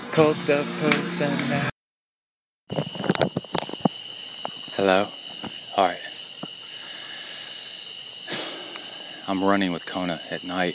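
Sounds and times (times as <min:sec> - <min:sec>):
speech: 0:00.2 - 0:01.7, 0:04.8 - 0:06.0, 0:09.3 - 0:10.7
cicadas at night: 0:02.7 - 0:10.7
tree frogs calling at night: 0:02.7 - 0:10.7.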